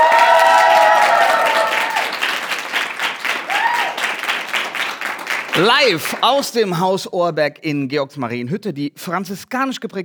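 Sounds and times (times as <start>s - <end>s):
audience cheers and whoops: 0.0s - 2.4s, 3.4s - 4.2s
live audience applauding at an educational centre in Germany: 0.0s - 6.4s
speech: 5.6s - 10.0s.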